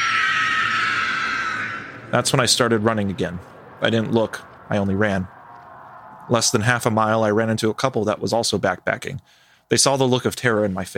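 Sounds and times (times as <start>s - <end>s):
loud piercing bone-chilling screech: 0.0s - 3.5s
speech: 2.1s - 5.4s, 6.3s - 10.9s.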